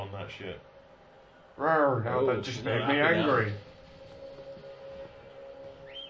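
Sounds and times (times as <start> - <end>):
speech: 0.3 - 0.7, 1.6 - 3.7
steady piercing whistle-like tone: 4.0 - 6.0
higher whistle sweeping upward: 4.6 - 6.0.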